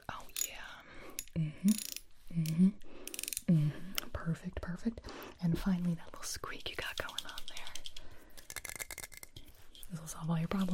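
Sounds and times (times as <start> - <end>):
ratcheting clicks of a tool tightening a screw: 1.2 - 3.5, 7.0 - 9.5
speech: 1.4 - 2.8, 4.8 - 7.1, 10.2 - 10.7.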